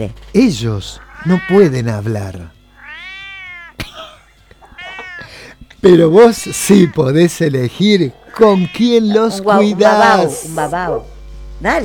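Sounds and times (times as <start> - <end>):
speech: 0.0 - 2.6, 5.8 - 11.8
cat meowing: 0.9 - 2.1, 2.8 - 3.8, 4.7 - 5.5, 6.2 - 7.2, 8.3 - 10.3.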